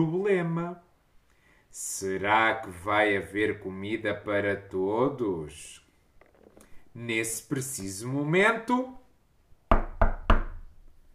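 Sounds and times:
speech: 0.0s - 0.9s, 1.7s - 5.8s, 7.0s - 9.0s
firm knocks on a wooden-sounding door: 9.7s - 10.7s.

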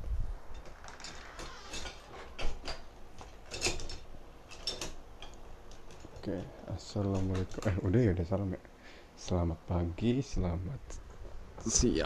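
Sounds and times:
door handle and latch clicking and rattling: 0.6s - 6.2s
door being pulled shut: 0.7s - 2.9s
speech: 6.3s - 11.0s, 11.6s - 12.0s.

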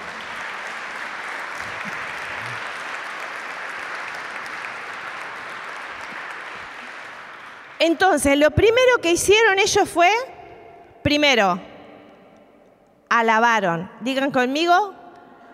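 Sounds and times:
audience applauding: 0.0s - 8.0s
speech: 7.8s - 10.3s, 11.0s - 11.7s, 13.1s - 15.0s.

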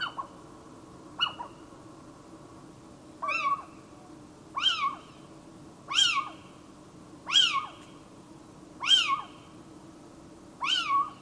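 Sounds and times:
little owl mewing calls: 0.0s - 0.4s, 1.2s - 1.7s, 3.2s - 3.9s, 4.5s - 5.3s, 5.9s - 6.6s, 7.2s - 8.0s, 8.8s - 9.6s, 10.6s - 11.2s.

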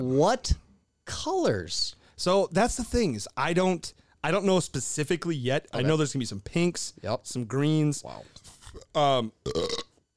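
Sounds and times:
speech: 0.0s - 9.8s
loud croaky burp: 8.5s - 10.0s.

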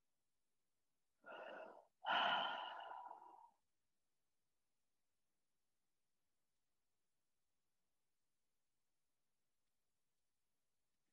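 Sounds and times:
deep breath during a guided relaxation exercise: 1.2s - 3.7s.

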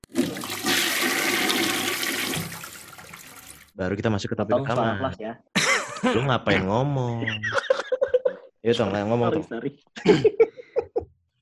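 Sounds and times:
toilet flushing: 0.0s - 3.8s
speech: 3.8s - 7.6s, 8.6s - 10.5s
laughter: 5.6s - 8.5s, 10.0s - 11.1s.

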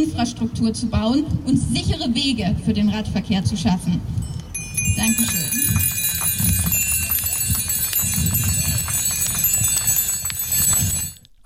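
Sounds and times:
speech: 0.0s - 4.2s, 4.9s - 6.8s
low crowd rumble: 4.2s - 11.2s
bicycle bells ringing at a bicycle demonstration: 4.2s - 11.3s.

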